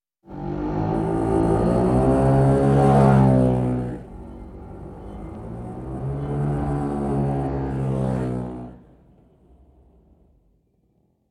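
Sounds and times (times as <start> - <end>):
motor scooter: 0.3 - 9.0.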